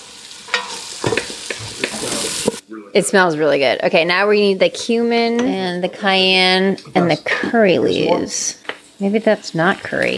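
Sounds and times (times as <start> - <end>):
onion, garlic and ginger sizzling in a pan: 0.0 - 2.6, 4.1 - 10.1
spoon scraping and clattering in a pan: 0.4 - 2.6
speech: 2.7 - 10.1.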